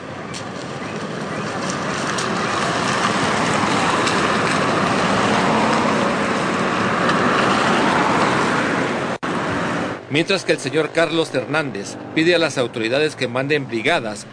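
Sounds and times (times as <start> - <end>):
street traffic roar of passing vehicles: 0.0 - 14.3
speech: 10.2 - 14.3.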